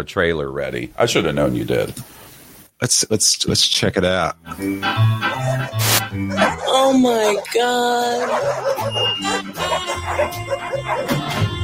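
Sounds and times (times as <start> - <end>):
speech: 0.0 - 2.2, 2.8 - 11.6
crowd of dogs barking and yipping: 5.1 - 11.6.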